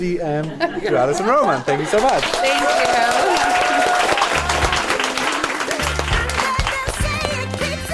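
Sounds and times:
speech: 0:00.0 - 0:03.6
laughter: 0:00.3 - 0:02.4
audience applause: 0:01.7 - 0:07.4.

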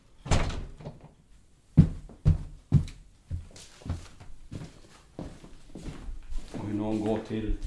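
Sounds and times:
door shutting with a solid thud: 0:00.2 - 0:01.2
speech: 0:06.9 - 0:07.6.

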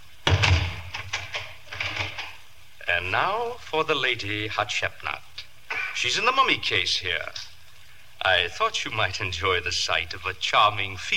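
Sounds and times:
door shutting with a solid thud: 0:00.2 - 0:02.4
metallic clicks and rattles of a door being locked: 0:00.3 - 0:02.4
speech: 0:03.0 - 0:05.3, 0:06.0 - 0:07.5, 0:08.2 - 0:11.1.

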